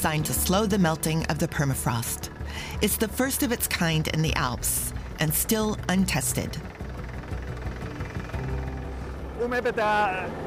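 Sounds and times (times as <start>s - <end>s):
speech: 0.0s - 6.8s, 9.4s - 10.4s
drilling rig engine rumbling while drilling holes for thermosiphons in the Alps: 0.0s - 10.4s.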